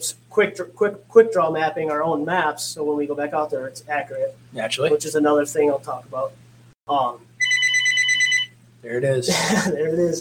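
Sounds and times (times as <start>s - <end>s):
speech: 0.0s - 7.3s, 8.8s - 10.2s
steady low hum: 0.0s - 10.2s
telephone ringing in a trilling electronic burst: 7.4s - 8.6s.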